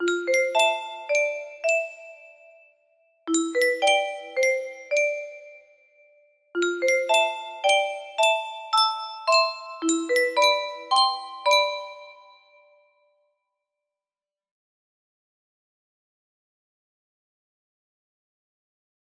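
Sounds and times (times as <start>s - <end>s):
maple music box playing: 0.0s - 2.5s, 3.3s - 5.7s, 6.6s - 12.6s.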